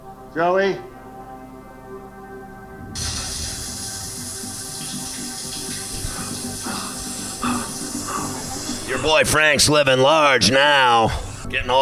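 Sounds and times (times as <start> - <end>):
speech: 0.4 - 0.9, 9.0 - 11.7
shower water running: 3.0 - 9.3.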